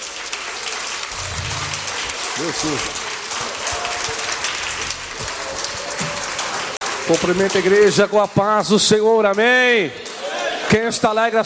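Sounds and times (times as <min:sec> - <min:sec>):
congregation clapping: 0:00.0 - 0:07.6
speech: 0:02.4 - 0:03.1, 0:07.1 - 0:10.1, 0:10.7 - 0:11.4.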